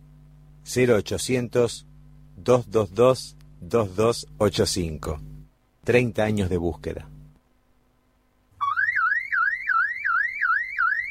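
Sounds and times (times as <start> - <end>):
speech: 0.7 - 7.1
electronic alarm sound effect warbling in rising sweeps: 8.6 - 11.0.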